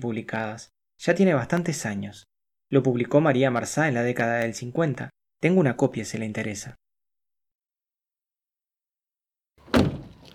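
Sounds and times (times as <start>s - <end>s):
speech: 0.0s - 6.8s
car door shutting with a solid thunk: 9.6s - 10.3s.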